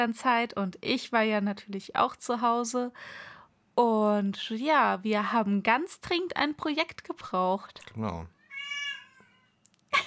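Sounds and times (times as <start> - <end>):
speech: 0.0 - 8.4
cat meowing: 8.2 - 9.6.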